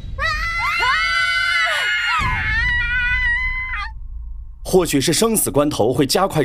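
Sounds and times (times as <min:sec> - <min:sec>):
several people screaming loudly together: 0:00.2 - 0:03.9
speech: 0:04.7 - 0:06.4.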